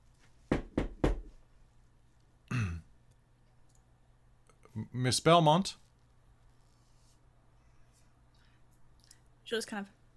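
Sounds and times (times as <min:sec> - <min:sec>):
knocking on a door: 0:00.5 - 0:01.4
throaty vocal sound like throat clearing: 0:02.5 - 0:02.9
speech: 0:04.8 - 0:05.8, 0:09.5 - 0:10.0.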